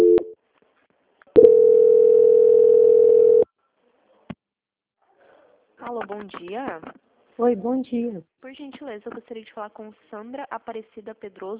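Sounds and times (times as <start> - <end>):
telephone line tone during a call transfer: 0.0 - 0.4, 1.4 - 3.4
speech: 6.1 - 11.5.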